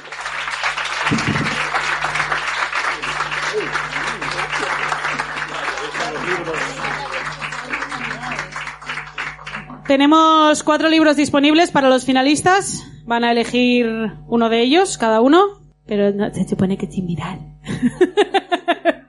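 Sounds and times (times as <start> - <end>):
audience applause: 0.0 - 10.0
laughter: 1.0 - 8.6, 17.7 - 19.0
faint voices murmuring: 3.0 - 8.7
speech: 9.9 - 18.4.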